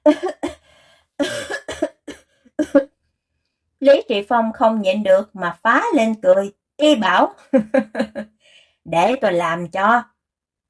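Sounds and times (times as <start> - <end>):
person coughing after inhaling smoke while blowing on a fire: 0.1 - 0.6, 1.2 - 2.9
speech: 3.8 - 10.1.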